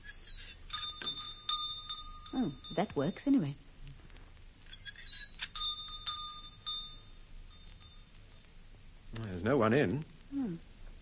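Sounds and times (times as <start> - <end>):
door bell jangling, rung by pulling a bell pull: 0.7 - 3.4, 5.0 - 8.1
speech: 2.4 - 3.6, 9.4 - 10.7.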